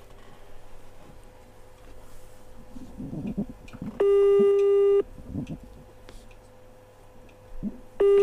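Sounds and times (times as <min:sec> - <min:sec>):
telephone line tones as a radio show places a call: 0:04.0 - 0:05.0, 0:08.0 - 0:08.2.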